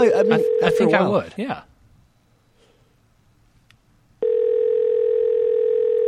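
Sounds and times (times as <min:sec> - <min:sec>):
electronic ringing tone on a phone line calling a payphone: 0:00.0 - 0:01.3, 0:04.2 - 0:06.0
speech: 0:00.0 - 0:01.7.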